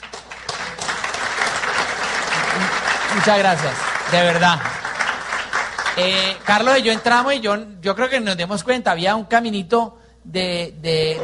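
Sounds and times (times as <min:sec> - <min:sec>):
audience applause: 0:00.0 - 0:07.3
speech: 0:03.2 - 0:04.7, 0:06.0 - 0:11.2.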